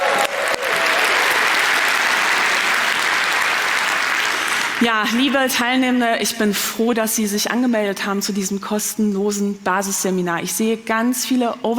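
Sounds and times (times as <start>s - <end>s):
room full of people applauding: 0.0s - 5.1s
speech: 4.8s - 11.7s.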